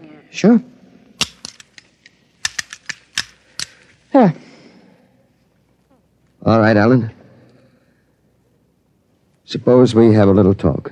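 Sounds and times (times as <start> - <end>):
speech: 0.3 - 0.8, 4.2 - 4.4, 6.5 - 7.2, 9.5 - 10.8
metallic clicks and taps of a firing pin fitted into a pistol: 1.2 - 4.0.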